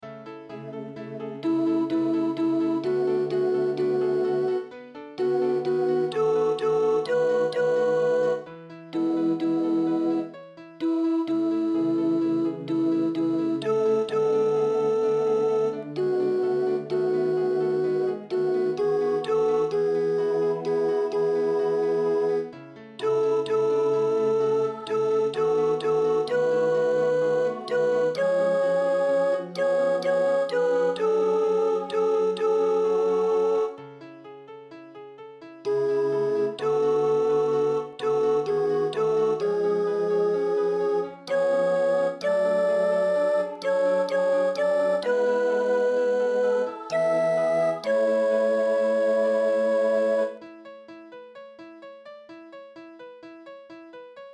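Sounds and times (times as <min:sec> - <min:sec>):
soprano singing: 0:00.4 - 0:34.0, 0:35.7 - 0:50.5.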